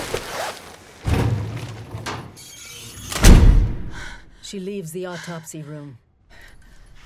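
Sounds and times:
body bag zipped in an autopsy room: 0.2s - 0.6s
speech: 4.5s - 6.0s.

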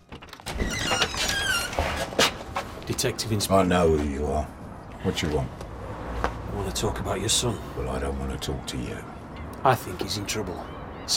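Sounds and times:
front door creaking open with a high squeal: 0.0s - 2.7s
speech: 2.9s - 5.6s, 6.6s - 11.1s.

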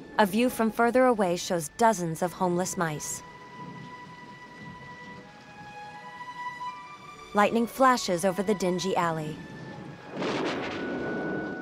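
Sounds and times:
speech: 0.2s - 3.3s, 7.4s - 9.5s
steady rain falling in a dingy alley: 2.4s - 11.6s.

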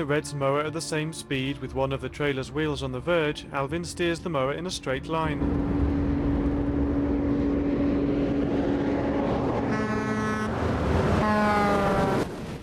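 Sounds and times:
speech: 0.0s - 5.9s
bright tonal whines: 5.2s - 12.3s
huge juggernaut lorry roaring past on a dusty roadside verge: 5.2s - 12.6s.

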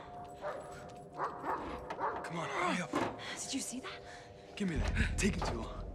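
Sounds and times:
dog running on a sidewalk barking and yipping: 0.5s - 2.3s
speech: 3.5s - 5.8s.

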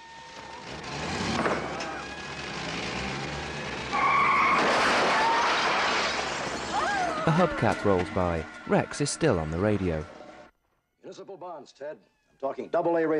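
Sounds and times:
ambulance engine driving away: 0.0s - 10.5s
ambulance tires squealing: 0.0s - 10.5s
speech: 7.3s - 10.2s, 11.1s - 13.1s.

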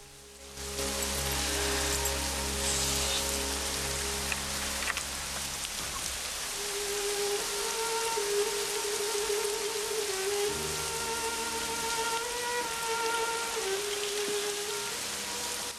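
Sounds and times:
droning musical tones: 0.0s - 15.7s
torrential rain pounding surfaces: 0.0s - 15.7s.

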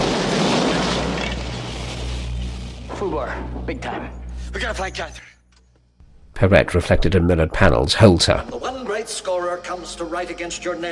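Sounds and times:
grenade exploding: 0.0s - 2.8s
speech: 3.0s - 5.3s, 6.4s - 10.9s.

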